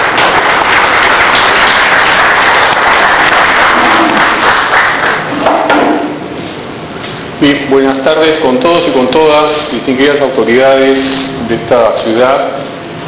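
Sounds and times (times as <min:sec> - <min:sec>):
audience applause: 0:00.0 - 0:05.3
speech: 0:07.4 - 0:12.7.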